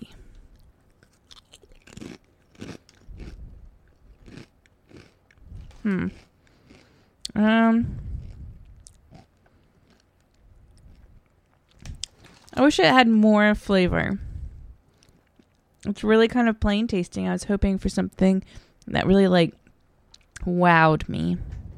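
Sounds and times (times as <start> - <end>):
crunching and chewing of cheddar and red onion chutney crisps: 0.3 - 7.2, 8.0 - 12.6
speech: 5.8 - 6.3, 7.4 - 8.0, 12.6 - 14.3, 15.8 - 19.6, 20.4 - 21.6.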